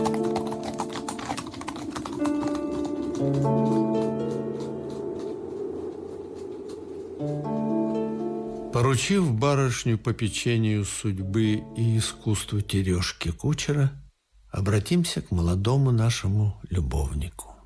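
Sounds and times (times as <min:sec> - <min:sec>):
horses' hooves clip-clopping as a carriage sets off: 0:00.0 - 0:09.2
sustained musical tones: 0:00.0 - 0:12.7
speech: 0:03.2 - 0:03.9, 0:08.8 - 0:17.5.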